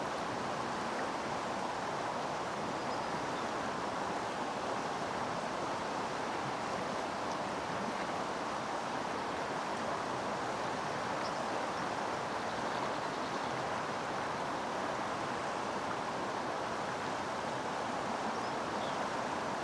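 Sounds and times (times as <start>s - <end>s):
mountain river rushing: 0.0s - 19.6s.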